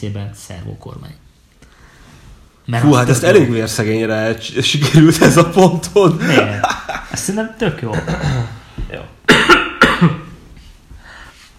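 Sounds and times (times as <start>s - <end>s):
speech: 0.0s - 1.3s, 2.7s - 10.2s
laughter: 6.0s - 8.6s
person clearing throat: 7.9s - 8.7s, 9.3s - 10.4s
person coughing: 7.9s - 8.7s, 9.3s - 10.4s.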